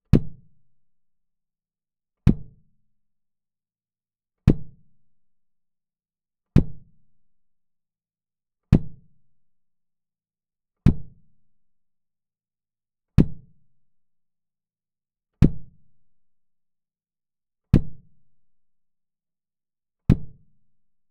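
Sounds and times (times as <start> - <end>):
kick drum recorded with microphone 10 cm inside: 0.1 - 0.5, 2.3 - 2.6, 4.4 - 4.8, 6.6 - 6.9, 8.7 - 9.1, 10.9 - 11.2, 13.2 - 13.6, 15.4 - 15.8, 17.7 - 18.1, 20.1 - 20.5.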